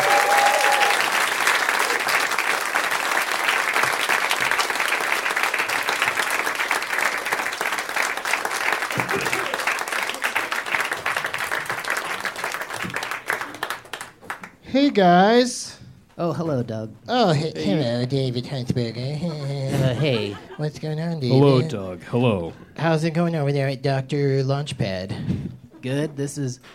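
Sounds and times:
audience applauding as guests are welcomed onto a stage: 0:00.0 - 0:14.6
laughter: 0:08.9 - 0:10.7, 0:17.3 - 0:21.8
speech: 0:14.8 - 0:15.6, 0:16.2 - 0:25.1, 0:25.8 - 0:26.7.

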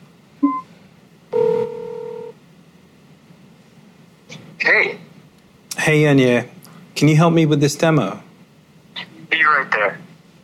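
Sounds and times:
electronic beep of a phone call dialing: 0:00.4 - 0:00.7
phone ringing tone: 0:01.4 - 0:02.4
speech: 0:04.6 - 0:05.0, 0:05.8 - 0:08.2, 0:09.7 - 0:10.0.

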